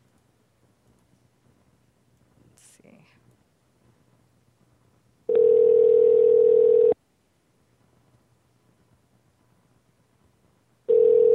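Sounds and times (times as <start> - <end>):
ringback tone of an outgoing phone call: 5.3 - 7.0, 10.9 - 11.3.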